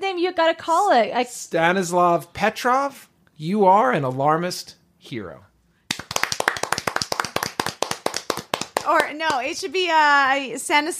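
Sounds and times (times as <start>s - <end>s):
speech: 0.2s - 5.5s, 8.9s - 10.9s
hands clapping: 5.9s - 9.5s.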